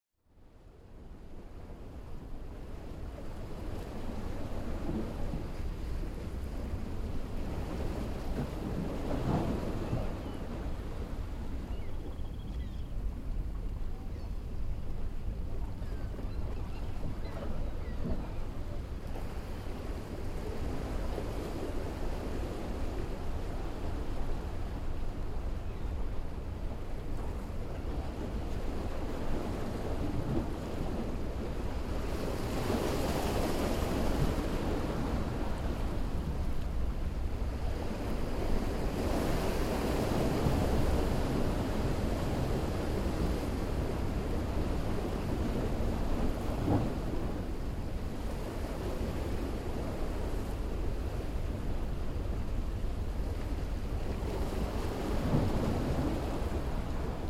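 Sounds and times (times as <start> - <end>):
waves at a jetty: 0.4 - 57.2.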